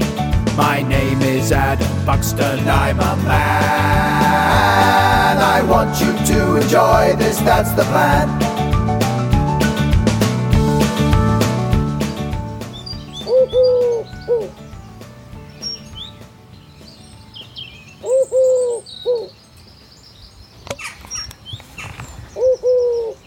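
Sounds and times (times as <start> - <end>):
loud musical opening with dense chords: 0.0 - 16.1
speech: 0.8 - 4.5, 5.3 - 8.5
faint birdsong twitters: 12.6 - 23.2
wood pigeon cooing: 13.2 - 14.6, 18.0 - 19.3, 21.8 - 23.2.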